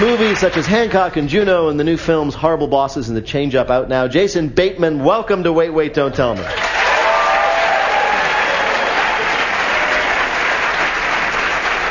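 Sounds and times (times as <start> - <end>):
audience applause from a large crowd: 0.0 - 1.2, 6.5 - 11.8
speech: 0.4 - 6.9.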